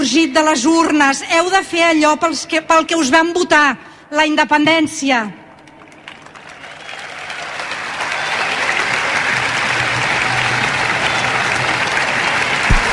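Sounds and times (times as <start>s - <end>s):
speech: 0.1s - 5.4s
crowd applauding: 5.7s - 12.9s.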